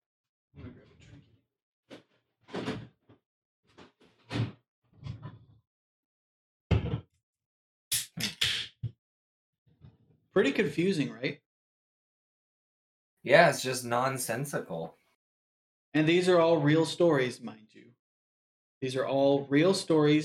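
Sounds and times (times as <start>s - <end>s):
scattered thumps and knocks: 1.9s - 5.5s, 6.7s - 7.2s
door being handled and shut: 2.5s - 2.9s
speech: 10.4s - 11.5s, 13.2s - 15.0s, 15.9s - 17.9s, 18.8s - 20.2s.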